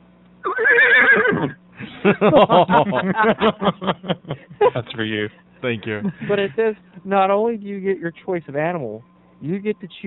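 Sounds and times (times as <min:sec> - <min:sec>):
horse neighing and nickering: 0:00.4 - 0:01.6
speech: 0:01.4 - 0:10.0
laughter: 0:01.8 - 0:06.7.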